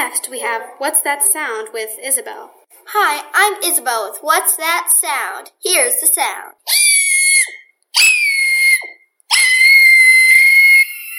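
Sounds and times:
speech: 0.1 - 6.8
person squealing at something adorable: 6.7 - 11.1.

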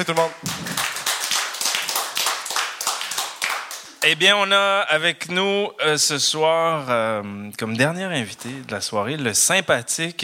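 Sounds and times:
speech: 0.0 - 1.0, 4.0 - 10.2
crowd applauding: 0.0 - 4.0.

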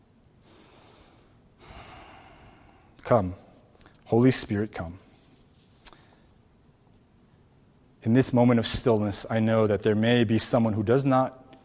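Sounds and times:
deep breath during a guided prayer: 0.4 - 3.0
speech: 3.1 - 3.4, 4.1 - 5.0, 8.0 - 11.4.

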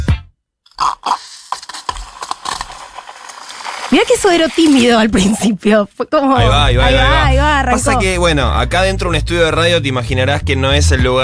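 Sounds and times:
chilled soda siphon squirted in a radio studio: 0.7 - 5.0
speech: 4.0 - 11.2.

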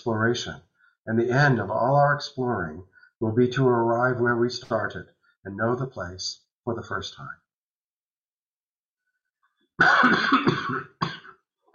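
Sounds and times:
speech: 0.0 - 7.4, 9.8 - 10.9
person coughing raspily: 9.8 - 11.7.

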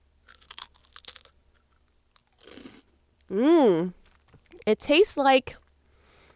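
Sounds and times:
chewing: 0.2 - 2.8
crunching a spicy onion ring chip: 0.2 - 2.8
person humming agreement: 3.3 - 3.9
speech: 3.3 - 4.0, 4.7 - 5.6.

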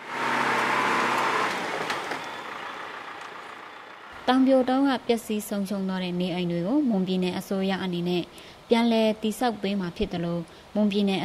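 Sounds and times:
motor vehicle road rumble: 0.0 - 6.9
speech: 4.3 - 11.2.

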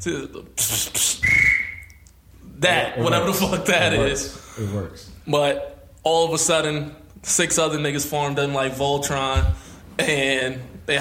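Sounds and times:
speech: 0.0 - 1.0, 2.6 - 10.9
person imitating a whistle with the mouth: 0.7 - 2.0.

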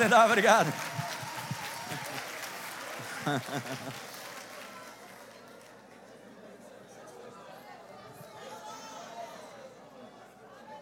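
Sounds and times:
speech: 0.0 - 1.0, 3.2 - 4.1
laughter: 0.0 - 4.3
crowd clapping: 0.0 - 6.4.

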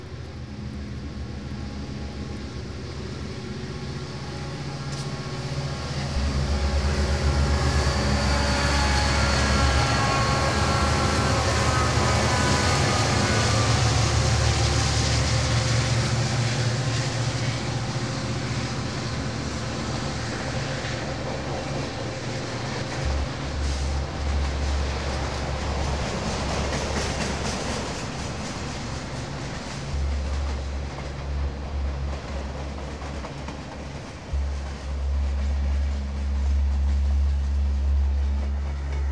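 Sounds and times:
train rolling on rails: 0.0 - 39.1.

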